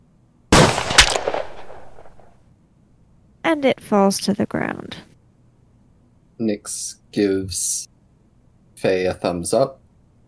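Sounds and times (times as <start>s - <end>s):
pistol shot: 0.5s - 2.4s
speech: 3.5s - 5.1s, 6.4s - 7.9s, 8.8s - 9.8s.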